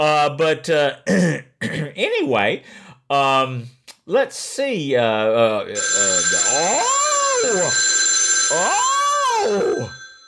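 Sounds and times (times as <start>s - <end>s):
speech: 0.0s - 7.9s, 8.5s - 10.0s
telephone ringing with a steady electronic tone: 5.8s - 10.2s.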